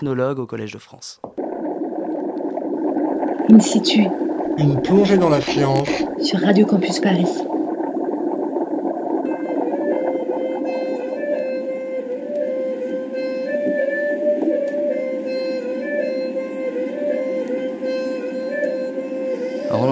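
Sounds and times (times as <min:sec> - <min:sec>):
speech: 0:00.0 - 0:01.4, 0:03.5 - 0:07.6
steady droning tone: 0:01.4 - 0:19.9
Laotian sinaï traditional wind instrument playing a nasal melody: 0:09.2 - 0:19.9.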